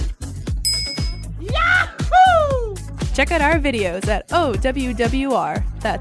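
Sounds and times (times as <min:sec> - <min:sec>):
bass-heavy music bed: 0:00.0 - 0:05.9
notification bell ding: 0:00.7 - 0:01.3
speech: 0:03.2 - 0:05.9.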